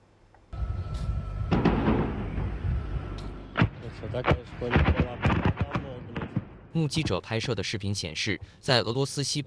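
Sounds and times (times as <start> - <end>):
noise: 0.0 - 9.4
violent explosions from drone strikes: 1.5 - 2.8, 3.5 - 6.8
speech: 4.0 - 5.4, 6.8 - 9.4.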